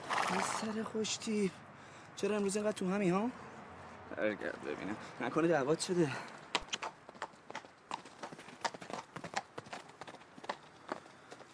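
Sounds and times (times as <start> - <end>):
speech: 0.3 - 3.5, 4.1 - 6.4
horse hooves clip-clopping: 6.5 - 11.5.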